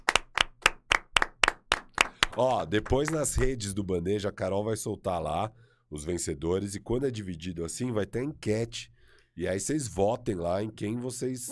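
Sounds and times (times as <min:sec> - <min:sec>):
hosts clapping hands: 0:00.0 - 0:03.5
speech: 0:02.4 - 0:11.5.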